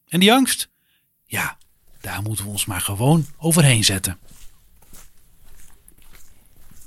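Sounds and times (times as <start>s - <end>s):
speech: 0.1s - 0.7s, 1.3s - 4.4s
breezy hiss: 1.2s - 6.8s
footsteps crunching along an outdoor path in nature: 1.4s - 6.8s.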